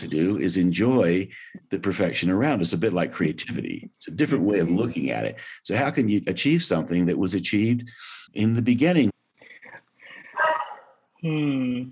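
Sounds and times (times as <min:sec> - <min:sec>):
speech: 0:00.0 - 0:09.2, 0:11.2 - 0:11.9
female dog giving short sharp barks: 0:10.4 - 0:11.0.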